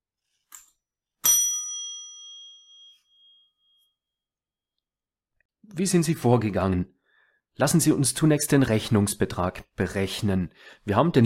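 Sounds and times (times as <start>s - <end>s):
small bell struck with a bright clear ding: 1.2s - 4.0s
speech: 5.7s - 7.0s, 7.6s - 11.2s.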